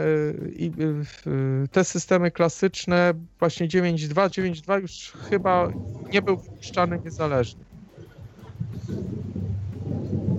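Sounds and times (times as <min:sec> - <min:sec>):
speech: 0:00.0 - 0:07.7
rolling thunder from a storm outside: 0:05.2 - 0:10.3.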